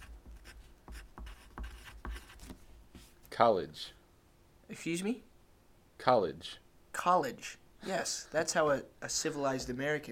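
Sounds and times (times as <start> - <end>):
word being written down by hand: 0.0 - 3.1
speech: 3.4 - 4.0, 4.7 - 5.3, 6.0 - 10.1.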